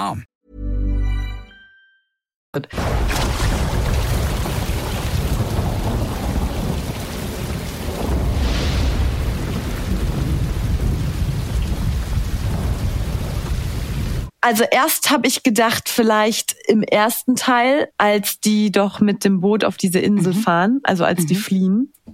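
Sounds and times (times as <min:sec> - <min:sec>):
speech: 0:00.0 - 0:00.3, 0:02.5 - 0:03.2, 0:14.4 - 0:22.0
thunder rumbling in a thunderstorm: 0:02.8 - 0:14.3
steady heavy rain: 0:02.8 - 0:14.4.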